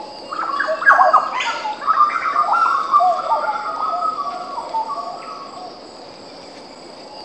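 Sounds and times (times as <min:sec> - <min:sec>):
jungle birds calling in a chorus of whistles, chirps and warbles: 0:00.0 - 0:07.2.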